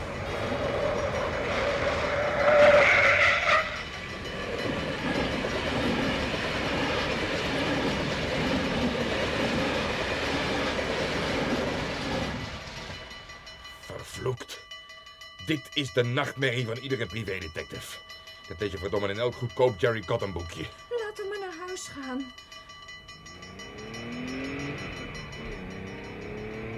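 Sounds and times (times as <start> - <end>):
train rumbling past at a railway crossing: 0.0 - 14.7, 15.6 - 26.7
car braking with a high squeal: 0.6 - 3.9
speech: 15.5 - 20.8.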